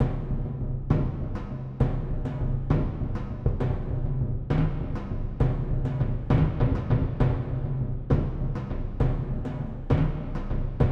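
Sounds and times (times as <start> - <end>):
cinematic drums: 0.0 - 10.8.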